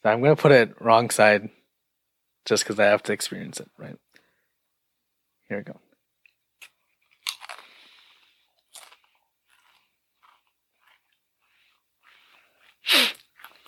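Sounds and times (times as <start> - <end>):
speech: 0.0 - 1.6, 2.4 - 4.0, 5.5 - 5.8
crunching and chewing a powder-coated chip: 6.6 - 13.6
person sneezing: 12.8 - 13.2.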